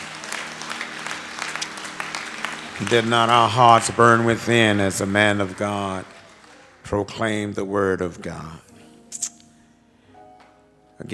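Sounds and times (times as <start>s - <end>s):
congregation clapping hands in praise at a church service: 0.0s - 7.6s
speech: 2.8s - 6.2s, 6.9s - 8.7s.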